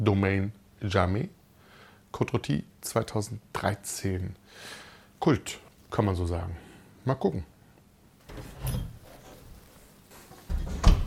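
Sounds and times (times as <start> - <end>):
speech: 0.0 - 1.4, 2.1 - 7.5
stuck door being forced open: 8.3 - 9.4.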